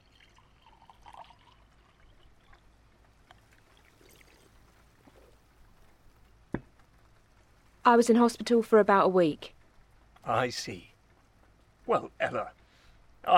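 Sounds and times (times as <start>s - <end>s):
water trickling into a glass: 0.0s - 5.4s
speech: 7.9s - 9.6s, 10.3s - 10.9s, 11.9s - 12.6s.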